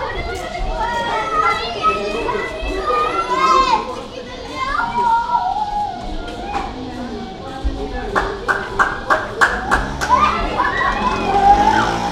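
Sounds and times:
children chattering and calling out near a mosque in Essaouira: 0.0 - 12.1
quick series of sharp claps or taps: 8.2 - 10.2.

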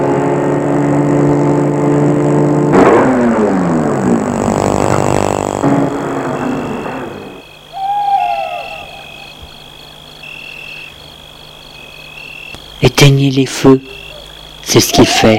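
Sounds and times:
car engine humming while driving along a small path into a wood: 0.0 - 13.0
hooting sound: 3.8 - 11.0
speech: 13.4 - 14.0, 14.7 - 15.3.

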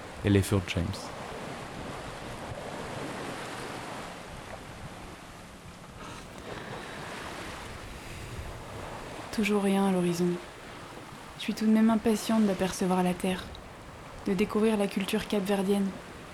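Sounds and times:
ocean waves washing around a sailboat at sea: 0.0 - 16.3
speech: 0.2 - 1.2, 9.4 - 10.5, 11.4 - 13.6, 14.3 - 16.0
wind buffeting the microphone on a sailboat deck: 1.2 - 5.3, 6.4 - 14.6.

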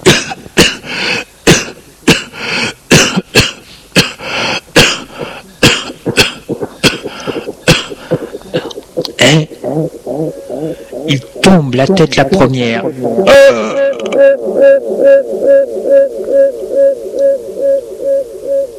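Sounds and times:
violent coughing fit: 0.0 - 9.6, 13.3 - 14.0
strained gasping breaths: 0.8 - 1.4, 2.2 - 2.9, 3.6 - 11.4
speech: 11.8 - 18.3.

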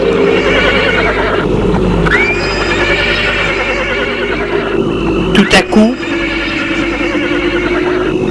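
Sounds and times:
horse whinnying as it rears up: 0.1 - 1.5, 2.1 - 4.8, 5.9 - 8.1
speech: 5.5 - 6.1.

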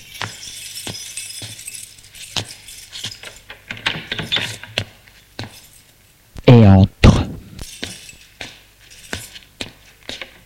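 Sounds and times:
keys jingling: 0.0 - 4.7, 7.6 - 9.6.

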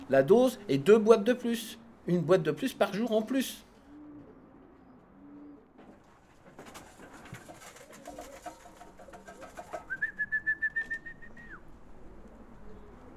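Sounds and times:
outdoor ambience: 0.0 - 13.1
speech: 0.1 - 3.7
pigeons cooing: 3.6 - 13.1
man whistling to call pigeons: 9.9 - 11.6.

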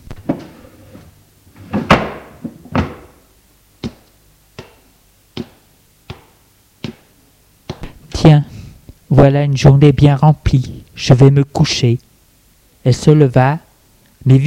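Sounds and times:
wooden sideboard drawer being shut: 0.3 - 3.1
sharp taps: 5.4 - 7.1
speech: 8.2 - 8.5, 9.2 - 12.1, 12.8 - 13.6, 14.2 - 14.4.

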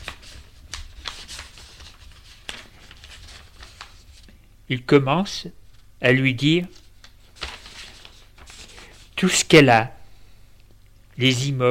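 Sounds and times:
paper rustling while a binder is opened: 0.0 - 4.3, 6.6 - 9.3
speech: 4.7 - 6.8, 9.2 - 10.0, 11.2 - 11.6.

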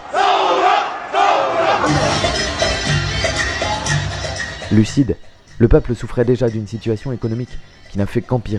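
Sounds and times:
large protest crowd in Lebanon chanting slogans in unison: 0.0 - 4.6
speech: 4.7 - 8.5.

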